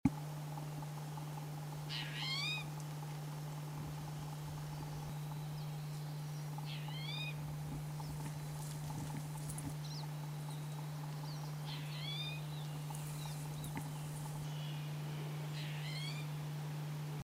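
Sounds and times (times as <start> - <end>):
birds calling: 0.2 - 16.5
towhee cat call: 1.8 - 2.8, 4.0 - 16.4.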